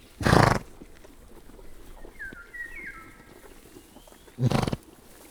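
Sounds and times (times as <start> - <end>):
pony snorting in a zoo: 0.2 - 0.8, 4.4 - 4.9.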